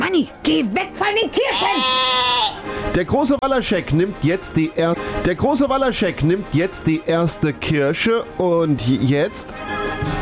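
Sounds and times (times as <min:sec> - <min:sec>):
speech: 0:00.2 - 0:10.2
sheep bleating: 0:01.5 - 0:02.6.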